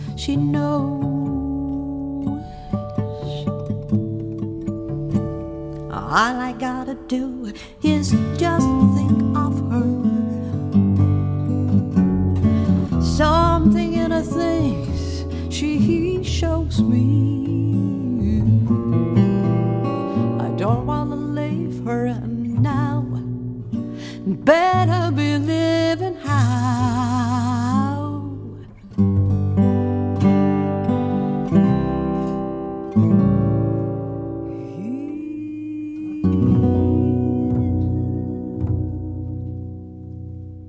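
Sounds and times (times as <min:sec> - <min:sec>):
person singing a slow melody with gentle vibrato: 0:00.0 - 0:03.6, 0:05.8 - 0:10.6, 0:12.6 - 0:18.8, 0:20.1 - 0:23.2, 0:24.0 - 0:28.7, 0:34.4 - 0:39.8
deep walking double bass: 0:00.0 - 0:35.2, 0:36.1 - 0:40.6
plucked guitar: 0:00.0 - 0:40.6
speech: 0:00.2 - 0:01.1, 0:06.1 - 0:08.9.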